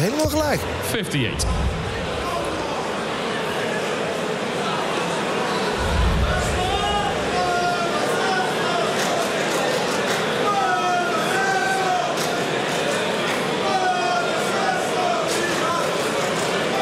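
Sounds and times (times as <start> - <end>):
speech: 0.0 - 1.9
large crowd cheering in a big indoor venue after a darts throw: 0.0 - 16.7.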